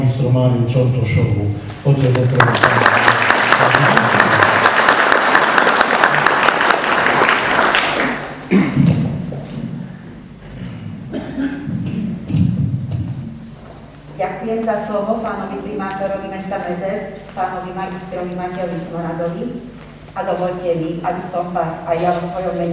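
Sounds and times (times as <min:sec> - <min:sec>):
low room murmur: 0:00.0 - 0:22.7
speech: 0:00.2 - 0:03.9, 0:08.5 - 0:08.8, 0:14.6 - 0:22.7
audience applause welcoming a speaker: 0:02.1 - 0:08.5.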